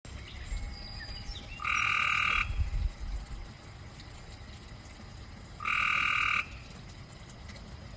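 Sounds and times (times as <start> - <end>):
low background hum: 0.1 - 7.9
Cope's gray treefrog Hyla chrysoscelis trilling in Maryland USA: 1.5 - 2.7, 5.6 - 6.7.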